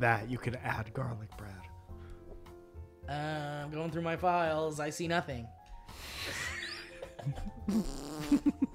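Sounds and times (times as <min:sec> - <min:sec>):
speech: 0:00.0 - 0:01.7, 0:03.1 - 0:06.4, 0:07.2 - 0:08.6
long comic fart sound effect: 0:07.6 - 0:08.6.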